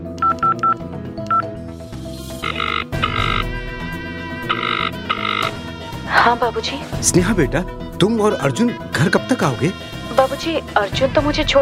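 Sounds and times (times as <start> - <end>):
steady music bed: 0.0 - 11.6
telephone keypad beeps: 0.2 - 1.5, 2.4 - 3.4, 4.5 - 5.5
speech: 6.3 - 11.6.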